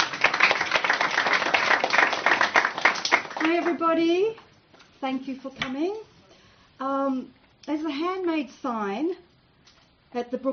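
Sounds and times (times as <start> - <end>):
audience applause welcoming a presenter before an academic talk: 0.0 - 3.8
speech: 3.6 - 4.4, 5.0 - 6.1, 6.8 - 9.2, 10.1 - 10.5.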